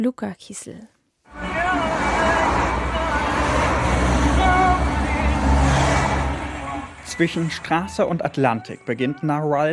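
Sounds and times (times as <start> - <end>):
speech: 0.0 - 2.0, 7.1 - 9.7
constant low engine rumble of roadside traffic: 1.3 - 8.4
cars rushing past on a roadside: 1.3 - 8.6.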